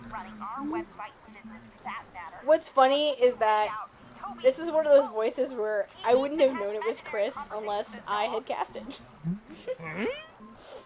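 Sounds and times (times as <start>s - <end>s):
speech: 0.2s - 10.5s
voice actor whimpering as a live vocal effect: 9.7s - 10.8s.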